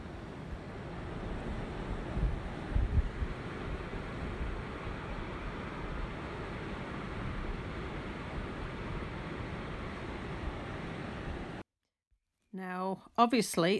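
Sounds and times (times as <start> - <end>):
waves rolling onto a beach in a bay: 0.0 - 11.6
wind buffeting: 0.0 - 11.6
speech: 12.6 - 13.7.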